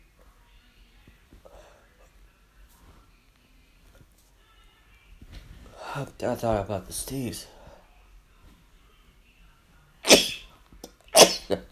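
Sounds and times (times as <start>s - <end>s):
speech: 6.0s - 7.5s
person sneezing from allergies: 10.0s - 10.5s, 11.1s - 11.7s.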